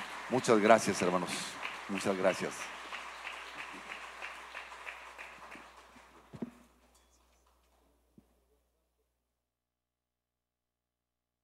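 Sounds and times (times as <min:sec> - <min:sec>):
audience applauding: 0:00.0 - 0:07.9
speech: 0:00.3 - 0:02.8.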